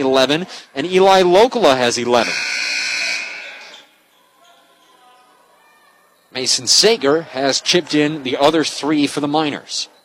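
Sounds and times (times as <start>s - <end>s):
speech: 0.0s - 2.7s, 6.4s - 10.0s
loud harsh basketball game buzzer in a large gym: 2.2s - 3.8s.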